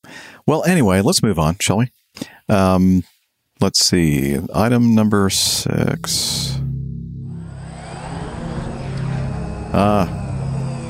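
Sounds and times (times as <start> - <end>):
speech: 0.5 - 6.6, 9.7 - 10.2
steady droning mechanical drone buzz: 6.6 - 10.8.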